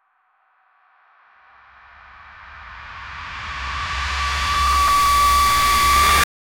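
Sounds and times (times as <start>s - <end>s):
cinematic riser for trailer: 1.6s - 6.2s.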